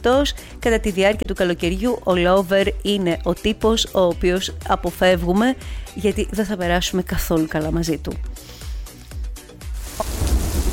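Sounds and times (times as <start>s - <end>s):
speech: 0.0s - 8.6s
rain falling, storm sound effect in radio advert: 9.8s - 10.7s
thunder rumbling, storm sound effect in radio advert: 9.9s - 10.7s.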